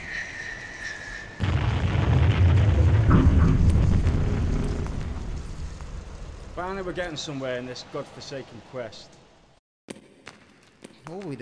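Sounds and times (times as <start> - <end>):
steady high whistling tone: 0.0 - 1.4
explosion blasting open a stone wall: 1.4 - 7.1
deep rumbling and crackling debris: 1.4 - 7.5
speech: 6.7 - 9.2, 11.1 - 11.3.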